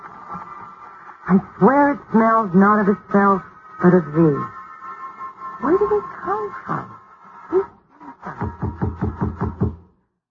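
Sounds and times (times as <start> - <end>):
speech: 1.3 - 4.6, 5.6 - 7.7
knocking on a door: 8.4 - 9.8.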